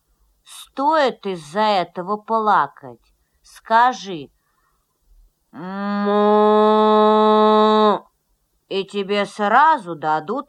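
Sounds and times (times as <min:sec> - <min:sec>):
speech: 0:00.8 - 0:04.4, 0:05.5 - 0:08.1, 0:08.7 - 0:10.4
human voice imitating a cow mooing: 0:05.6 - 0:08.1.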